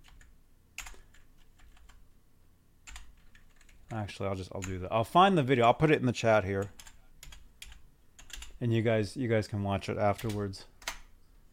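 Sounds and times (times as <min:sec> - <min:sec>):
typing on a computer keyboard: 0:00.0 - 0:02.0, 0:02.8 - 0:04.0, 0:06.6 - 0:08.6, 0:10.2 - 0:11.1
speech: 0:03.9 - 0:06.8, 0:08.6 - 0:10.7.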